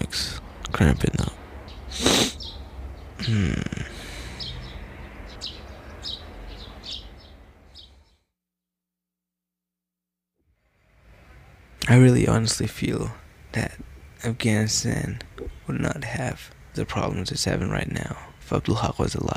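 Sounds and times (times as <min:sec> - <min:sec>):
birds chirping: 0:00.0 - 0:08.3, 0:11.4 - 0:19.3
speech: 0:00.1 - 0:01.3, 0:03.3 - 0:03.6, 0:11.9 - 0:19.3
loud snort-like bursts: 0:01.9 - 0:02.4, 0:03.2 - 0:04.8.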